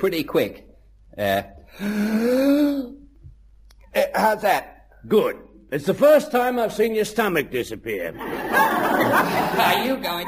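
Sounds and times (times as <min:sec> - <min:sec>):
speech: 0:00.0 - 0:03.0, 0:03.9 - 0:10.2
person taking a deep breath: 0:01.7 - 0:02.8
laughter: 0:08.1 - 0:10.2.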